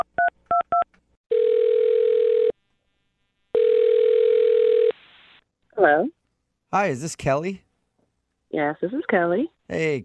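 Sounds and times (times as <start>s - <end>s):
long steady telephone ringback tones: 1.3s - 2.5s, 3.6s - 4.9s
speech: 5.8s - 7.6s, 8.6s - 10.0s.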